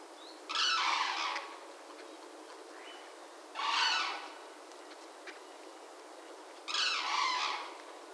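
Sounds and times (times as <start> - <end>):
Grus antigone calling: 0.5 - 1.6, 2.7 - 4.4, 6.7 - 7.9.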